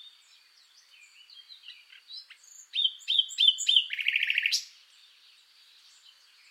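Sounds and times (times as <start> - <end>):
Common nightingale Luscinia megarhynchos song: 0.0 - 6.4.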